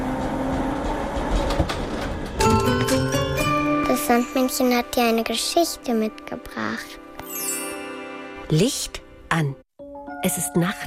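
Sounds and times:
tram rumbling on rails: 0.0 - 3.5
speech: 4.1 - 7.0, 8.5 - 9.6, 10.2 - 10.8.

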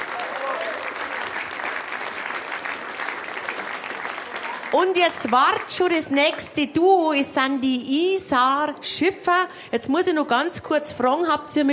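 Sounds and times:
faint voices and cheers: 0.0 - 1.2
audience applause for singers and musicians: 0.0 - 5.7
speech: 4.8 - 11.7.

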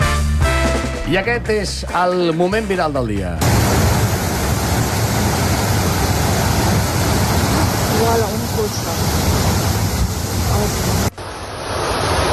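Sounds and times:
speech: 1.1 - 3.8
floodwater rushing in a torrent during heavy rain: 3.4 - 12.3.

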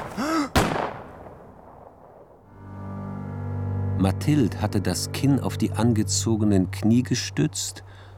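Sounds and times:
gunshot: 0.0 - 1.4
low humming drone: 2.4 - 8.1
speech: 4.0 - 8.1.

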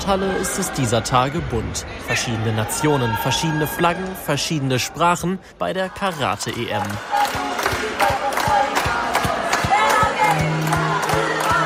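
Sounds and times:
speech: 0.0 - 7.4
large crowd of fans cheering and chanting in an ice sports hall: 0.0 - 11.6
rhythmic claps or drumbeats: 6.4 - 11.6.

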